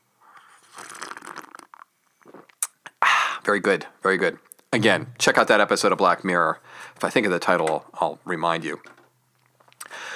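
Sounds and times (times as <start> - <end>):
person sipping tea: 0.3 - 2.9
speech: 3.5 - 9.0.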